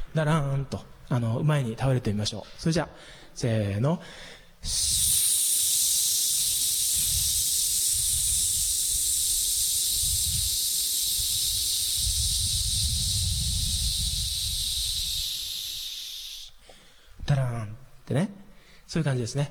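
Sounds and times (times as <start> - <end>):
speech: 0.2 - 5.2, 17.3 - 19.4
hissing exhale through the teeth during a relaxation exercise before singing: 4.6 - 16.9.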